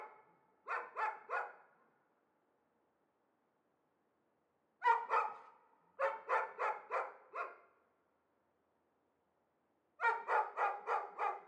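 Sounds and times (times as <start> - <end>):
dogs barking shut in cages in Chamonix-Mont-Blanc, France: 0.7 - 1.6, 6.0 - 7.6, 10.0 - 11.4.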